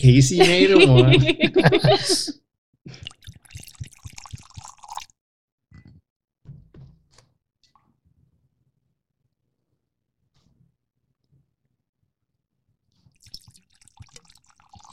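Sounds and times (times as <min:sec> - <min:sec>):
laughter: 0:00.0 - 0:02.4
speech: 0:00.0 - 0:02.4
soft drips and clinks: 0:02.9 - 0:05.1, 0:13.1 - 0:14.9
Scotch whisky pouring into a glass: 0:03.0 - 0:05.1, 0:13.2 - 0:14.9.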